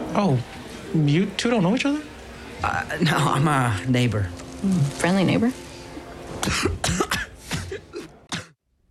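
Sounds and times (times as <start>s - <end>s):
speech: 0.1s - 5.6s, 6.4s - 7.1s
harsh rough coughing fit: 6.4s - 8.6s.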